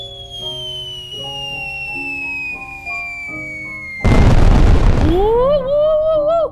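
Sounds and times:
fireworks set off at a party bursting and crackling: 0.0s - 6.2s
rising whistling tones: 0.0s - 6.2s.

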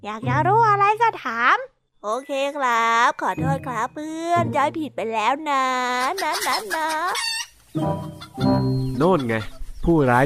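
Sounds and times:
speech: 0.0s - 10.2s
chicken clucking and squawking: 5.9s - 10.2s.

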